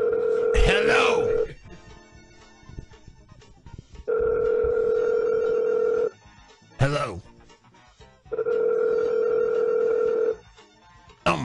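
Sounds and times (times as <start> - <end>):
phone line ringback tone: 0.0 - 3.2, 4.0 - 6.2, 8.3 - 10.5.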